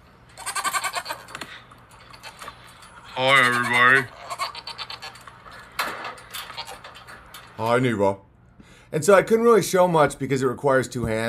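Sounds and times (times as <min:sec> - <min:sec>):
dairy goats bleating in a barn before milking: 0:00.4 - 0:01.3, 0:03.1 - 0:05.2
speech: 0:03.2 - 0:04.2, 0:07.6 - 0:08.2, 0:08.9 - 0:11.2.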